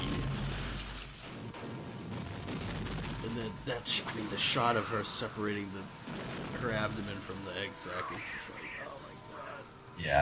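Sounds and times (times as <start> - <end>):
bandolier of grenades exploding in a fire in a film: 0.0 - 7.6
speech: 3.4 - 9.0, 10.0 - 10.1.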